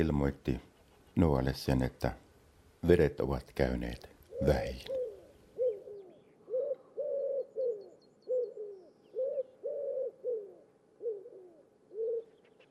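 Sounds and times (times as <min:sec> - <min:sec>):
speech: 0:00.0 - 0:02.2, 0:02.8 - 0:05.0
dove cooing: 0:04.3 - 0:12.6.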